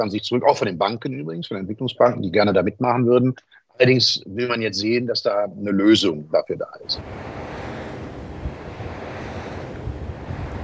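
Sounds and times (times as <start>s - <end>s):
speech: 0.0s - 7.3s
wind roar at a wind farm: 6.9s - 10.6s
wind turbine rotor blades turning: 7.0s - 10.6s.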